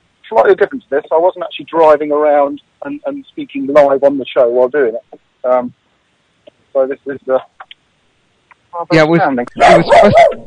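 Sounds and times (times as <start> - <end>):
speech: 0.3 - 5.8, 6.7 - 7.6, 8.7 - 10.4
dog barking: 9.6 - 10.4.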